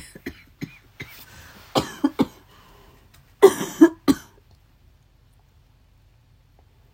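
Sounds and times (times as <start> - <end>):
person with a cold and sore throat coughing: 0.0 - 2.5, 3.4 - 4.4.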